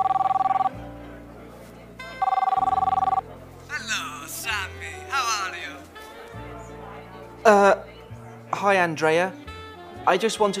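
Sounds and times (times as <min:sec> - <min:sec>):
outgoing phone call ringback tone heard through the handset: 0:00.0 - 0:00.8, 0:02.2 - 0:03.2
speech: 0:07.5 - 0:07.8, 0:08.6 - 0:09.4, 0:10.0 - 0:10.5.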